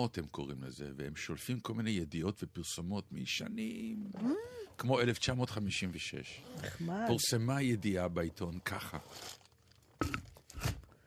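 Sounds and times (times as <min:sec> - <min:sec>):
speech: 0:00.0 - 0:09.4
crinkly plastic bag with something in it rustling: 0:08.6 - 0:10.9.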